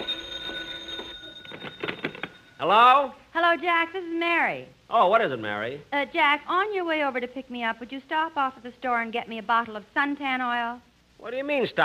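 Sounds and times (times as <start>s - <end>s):
telephone ringing with a high electronic tone: 0.0s - 2.7s
speech: 2.6s - 11.8s.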